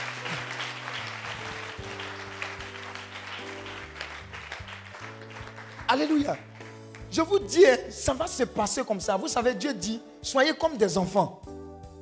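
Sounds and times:
congregation applauding in praise during a church worship service: 0.0 - 7.7
speech: 5.9 - 6.5, 7.1 - 11.6.

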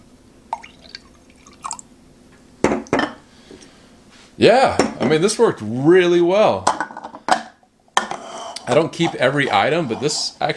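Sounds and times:
lime juice from a citrus squeezer poured into a glass: 0.5 - 1.8
speech: 4.4 - 6.7, 8.7 - 10.5.

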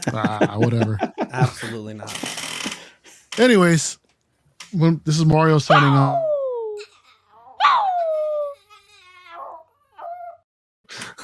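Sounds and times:
laughter: 0.0 - 2.2
speech: 0.1 - 2.5, 3.4 - 4.0, 4.7 - 6.3
person imitating a howl: 5.7 - 6.8, 7.6 - 8.6.

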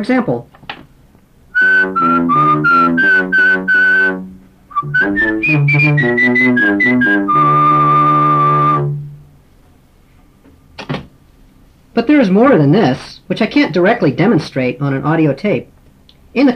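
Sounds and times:
speech: 0.0 - 0.6, 1.6 - 3.8, 4.8 - 8.3, 12.0 - 15.7, 16.3 - 16.5
person whistling a tune into voice recognition software: 1.6 - 9.0.

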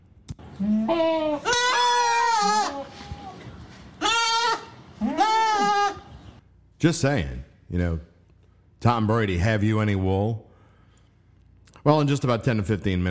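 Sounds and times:
goat bleating: 0.5 - 6.2
speech: 0.6 - 1.6, 6.8 - 8.1, 8.8 - 10.5, 11.8 - 13.0.

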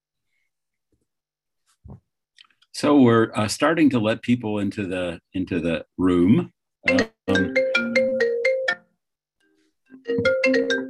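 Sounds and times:
speech: 2.8 - 7.6
mobile phone ringtone with bright repeating melodic pattern: 6.9 - 8.9, 10.0 - 10.8.

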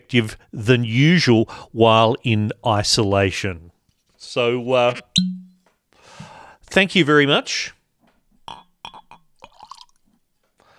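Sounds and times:
speech: 0.1 - 5.5, 6.7 - 7.8
12-year-old single malt whisky pouring into a glass: 9.4 - 10.0.

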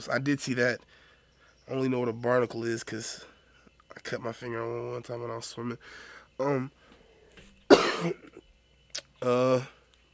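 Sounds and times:
speech: 0.0 - 1.0, 1.7 - 3.3, 3.9 - 6.8, 8.0 - 8.3, 9.2 - 9.8
person coughing raspily: 7.7 - 8.4.

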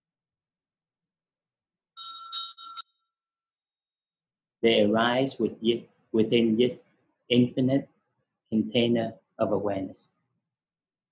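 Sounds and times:
small meditation bell ringing: 2.0 - 3.2
speech: 4.6 - 7.9, 8.5 - 10.2.

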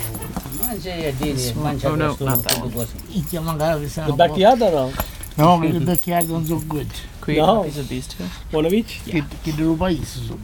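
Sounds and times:
keys jangling: 0.0 - 0.9, 2.3 - 3.8, 5.0 - 6.9
speech: 0.7 - 10.4.

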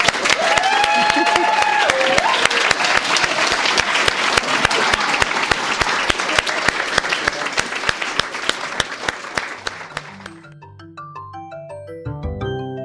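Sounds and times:
crowd applauding at a writers' workshop reading: 0.0 - 10.5
soft melodic music outro: 10.0 - 12.8.

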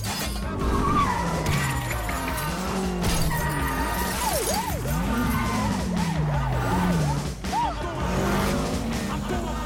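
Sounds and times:
roaring car engines: 0.0 - 9.6
police sirens wailing during car chase: 0.4 - 9.6
laughter: 4.6 - 9.6.

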